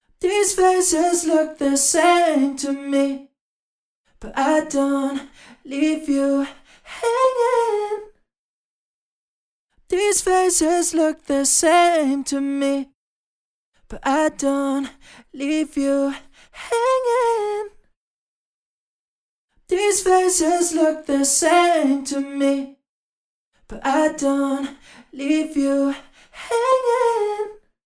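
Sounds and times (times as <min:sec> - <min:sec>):
vocals with micro pitch: 0:00.0 - 0:03.4, 0:04.1 - 0:08.2, 0:09.8 - 0:13.0, 0:13.8 - 0:17.9, 0:19.6 - 0:22.8, 0:23.5 - 0:27.8.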